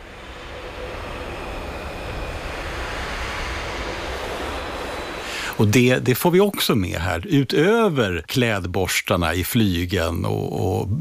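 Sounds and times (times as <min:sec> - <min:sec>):
air blown through brass instruments without tone: 0:05.2 - 0:05.8
speech: 0:05.6 - 0:10.9.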